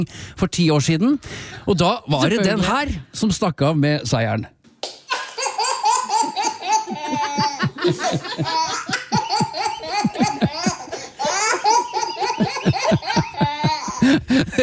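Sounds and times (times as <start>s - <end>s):
speech: 0.0s - 4.6s, 8.1s - 8.7s
10-month-old baby boy laughing in breathy bursts and squeals: 5.1s - 14.6s.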